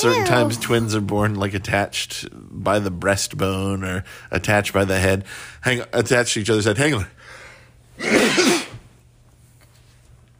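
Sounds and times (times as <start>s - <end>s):
speech: 0.0s - 7.4s, 8.0s - 8.6s
person sneezing: 8.0s - 8.8s.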